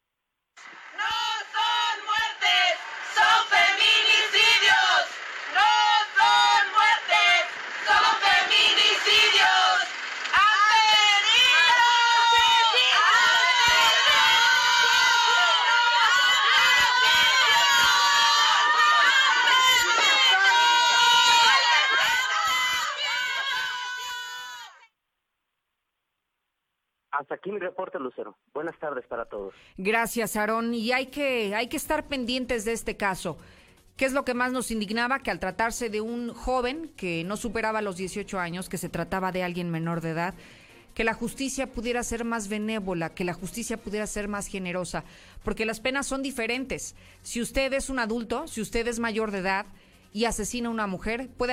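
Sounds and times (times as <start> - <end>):
angry crowd shouting and jeering: 0.7 - 24.9
speech: 27.4 - 51.5.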